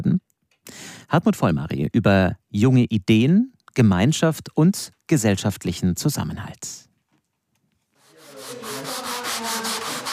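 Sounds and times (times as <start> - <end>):
speech: 1.1 - 6.9
hand sanding on wooden window frames: 8.0 - 10.1.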